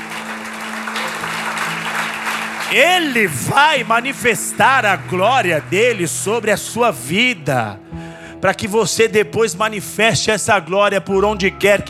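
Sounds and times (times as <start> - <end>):
audience applauding loudly: 0.0 - 7.0
speech: 2.7 - 11.8.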